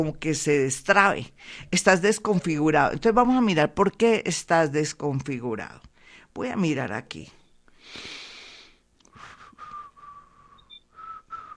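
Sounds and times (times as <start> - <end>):
speech: 0.0 - 8.2
breathy rush of air: 7.8 - 10.6
person whistling a short tune: 9.2 - 11.5.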